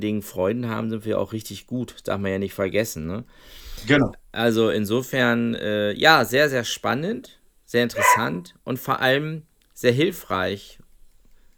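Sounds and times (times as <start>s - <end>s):
speech: 0.0s - 10.8s
dog barking short yapping barks: 7.9s - 8.4s.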